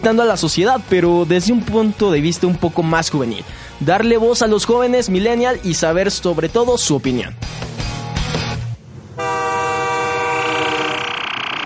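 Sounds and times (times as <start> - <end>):
speech: 0.0 - 7.7
moving train rumbling: 8.3 - 11.6
multi-toned train horn blaring: 9.2 - 11.4.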